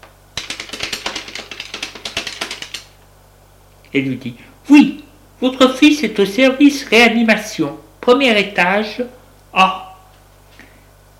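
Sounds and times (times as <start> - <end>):
low hum: 0.0 - 11.1
typing on a computer keyboard at a hospital: 0.4 - 2.9
speech: 3.9 - 9.9.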